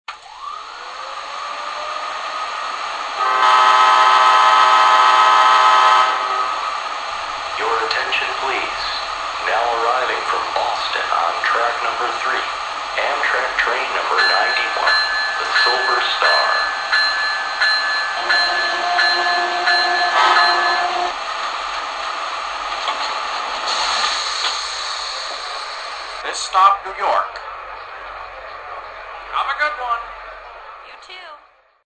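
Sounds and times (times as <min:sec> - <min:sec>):
AEM7 electric trains: 0:00.1 - 0:31.2.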